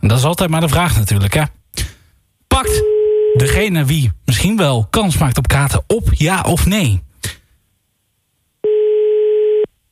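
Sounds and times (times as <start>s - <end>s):
speech: 0.0s - 1.6s, 3.4s - 7.4s
phone line ringback tone on outgoing call: 2.8s - 3.5s, 8.6s - 9.7s.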